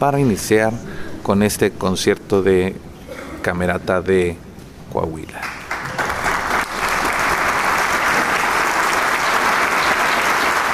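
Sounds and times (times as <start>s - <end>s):
speech: 0.0s - 5.6s
large audience applauding for the entering concertmaster: 5.4s - 10.7s.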